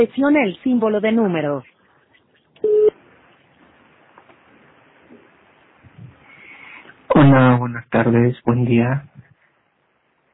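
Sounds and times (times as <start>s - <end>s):
speech: 0.0s - 1.7s, 7.2s - 9.1s
faint hiss on an open phone line: 1.6s - 10.3s
voicemail recording tone beep: 2.6s - 3.0s.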